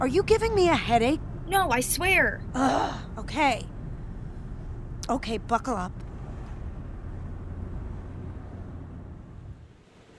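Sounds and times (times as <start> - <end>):
speech: 0.0 - 3.7, 5.1 - 6.0
ocean waves washing against the shore: 9.5 - 10.1.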